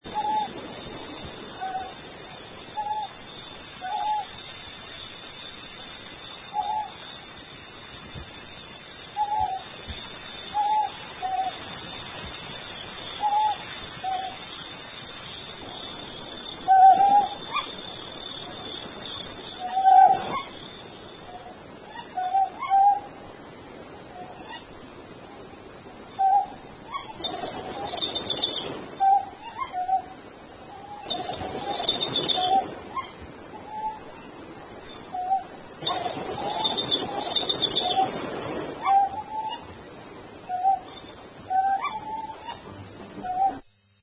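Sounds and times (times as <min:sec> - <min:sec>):
Otus elegans calling: 0:00.1 - 0:00.7, 0:01.4 - 0:02.1, 0:02.7 - 0:03.2, 0:03.8 - 0:04.4, 0:06.5 - 0:07.0, 0:09.1 - 0:12.0, 0:13.1 - 0:14.6, 0:15.3 - 0:23.2, 0:24.1 - 0:24.8, 0:26.1 - 0:38.2, 0:38.8 - 0:39.8, 0:40.4 - 0:43.6.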